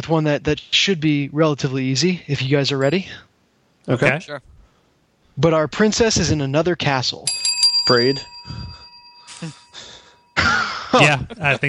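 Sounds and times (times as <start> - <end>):
speech: 0.0 - 3.3, 3.9 - 4.5, 5.4 - 8.8, 9.4 - 9.6, 10.4 - 11.6
small handheld bell rung to buzz in during a video game quiz: 7.3 - 11.0.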